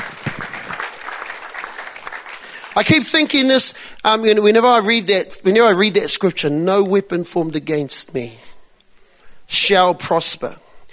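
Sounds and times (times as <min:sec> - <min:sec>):
round of applause during a church service: 0:00.0 - 0:03.4
speech: 0:02.8 - 0:08.4, 0:09.5 - 0:10.6.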